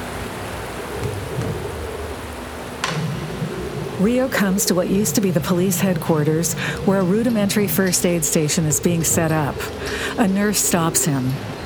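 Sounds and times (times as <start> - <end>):
heavy rain of big droplets stained with radioactive dust: 0.0 - 11.6
low rumbling backdrop: 0.0 - 11.6
loud isolated raindrop impacts: 2.7 - 4.0
speech: 4.0 - 11.6.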